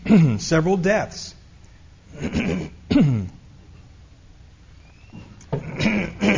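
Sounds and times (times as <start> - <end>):
person clearing throat: 0.0 - 0.5, 2.1 - 3.4, 5.5 - 6.3
speech: 0.1 - 1.4, 2.1 - 3.4.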